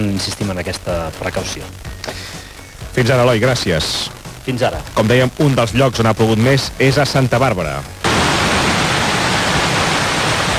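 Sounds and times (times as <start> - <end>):
speech: 0.2 - 2.2, 2.9 - 8.0
floodwater rushing down a town street: 8.0 - 10.5.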